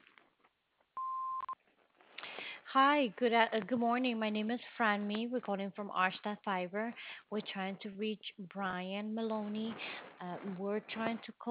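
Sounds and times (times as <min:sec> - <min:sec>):
answering machine beep before a voicemail: 0:01.0 - 0:01.6
speech: 0:02.8 - 0:11.4.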